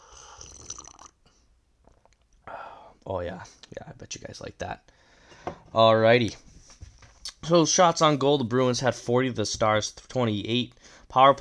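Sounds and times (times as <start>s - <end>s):
person slurping hot coffee: 0.0s - 1.3s
speech: 3.1s - 5.0s, 5.7s - 6.5s, 7.5s - 11.3s.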